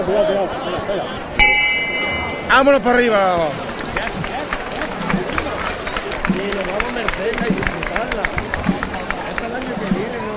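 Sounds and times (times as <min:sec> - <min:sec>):
speech: 0:00.0 - 0:01.6, 0:02.5 - 0:04.3
crowd murmuring: 0:00.0 - 0:10.3
procession float bell strike: 0:01.4 - 0:03.1.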